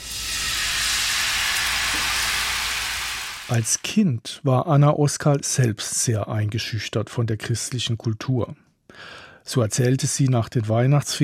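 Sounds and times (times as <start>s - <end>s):
blood pancake batter sizzling in a very hot pan: 0.0s - 3.8s
speech: 3.5s - 11.2s.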